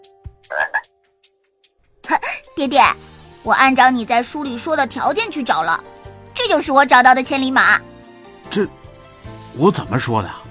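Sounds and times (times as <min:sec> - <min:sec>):
toad croaking: 0:00.5 - 0:00.9
speech: 0:02.1 - 0:07.9, 0:08.5 - 0:08.8, 0:09.6 - 0:10.4.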